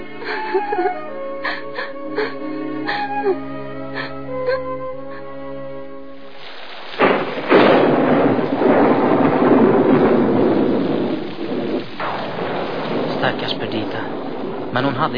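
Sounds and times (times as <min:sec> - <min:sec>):
heavy rain pouring on a stormy October night: 0:00.0 - 0:03.3, 0:06.0 - 0:15.1
soft tonal music-like sounds: 0:00.0 - 0:06.5
speech: 0:00.3 - 0:01.6, 0:03.2 - 0:03.5, 0:15.0 - 0:15.1
sharp thunderclap on a stormy October night: 0:06.9 - 0:15.1.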